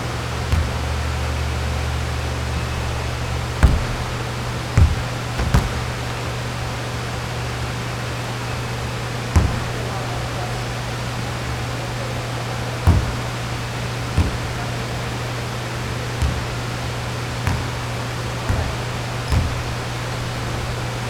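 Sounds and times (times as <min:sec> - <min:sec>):
low ventilation hum: 0:00.0 - 0:21.0
practice shots thumping at a court: 0:00.4 - 0:07.0, 0:09.3 - 0:10.3, 0:12.8 - 0:13.4, 0:14.2 - 0:14.6, 0:16.2 - 0:16.7, 0:17.4 - 0:20.3.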